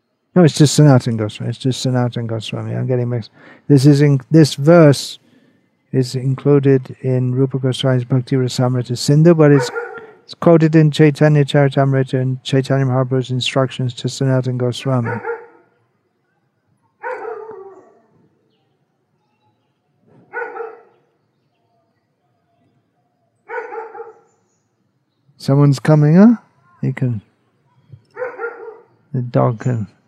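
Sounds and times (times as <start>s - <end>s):
speech: 0.4s - 5.2s, 5.9s - 15.3s, 25.5s - 27.3s, 29.1s - 30.0s
dog barking: 9.5s - 10.3s, 15.0s - 15.8s, 17.0s - 18.2s, 20.2s - 21.0s, 23.4s - 24.3s, 27.7s - 28.9s.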